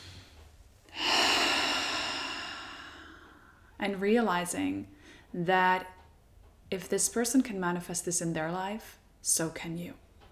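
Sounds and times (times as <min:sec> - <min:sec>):
deep breath during a guided relaxation exercise: 0:00.0 - 0:03.8
speech: 0:03.8 - 0:06.0, 0:06.7 - 0:10.0.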